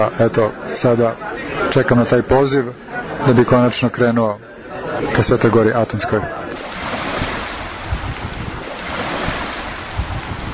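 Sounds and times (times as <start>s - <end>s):
speech: 0.0s - 6.4s
waves of the Aegean Sea washing onto the shore at a small seaside town: 6.1s - 10.5s
wind buffeting the microphone: 6.2s - 10.5s.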